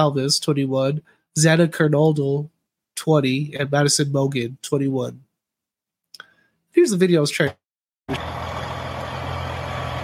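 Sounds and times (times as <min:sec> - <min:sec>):
speech: 0:00.0 - 0:05.3, 0:06.8 - 0:08.4
heavy truck engine rumbling: 0:08.1 - 0:10.0.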